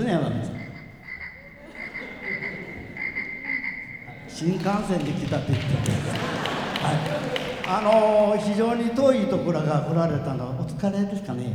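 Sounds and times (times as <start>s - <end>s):
high-pitched trill: 0.0s - 4.3s
frogs croaking in chorus: 0.0s - 4.4s
laughter: 1.1s - 9.6s
speech: 4.4s - 11.5s.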